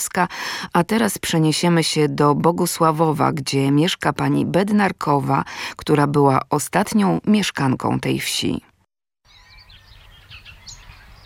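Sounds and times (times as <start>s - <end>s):
speech: 0.0s - 8.7s
several birds chirping and warbling outdoors in the village of Bogusławów: 9.2s - 11.2s.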